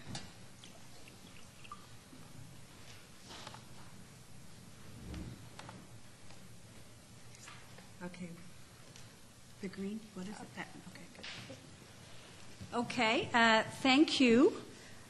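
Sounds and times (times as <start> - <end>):
faint room noise: 0.0 - 15.0
water pouring into a glass: 0.7 - 2.0
speech: 8.1 - 8.5, 9.6 - 11.8, 12.6 - 15.0.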